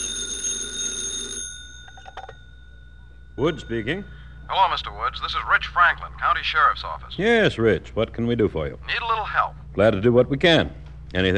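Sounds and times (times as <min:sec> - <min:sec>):
telephone bell ringing at FBI headquarters: 0:00.0 - 0:06.2
speech: 0:03.4 - 0:11.3.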